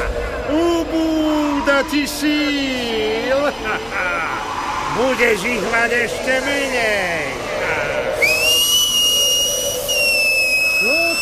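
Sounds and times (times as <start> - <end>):
laughter: 0.0 - 10.0
low hum: 0.0 - 11.2
short rising tones: 0.0 - 11.2
speech: 1.7 - 4.4, 5.0 - 7.4
high-pitched whistle: 8.2 - 11.2.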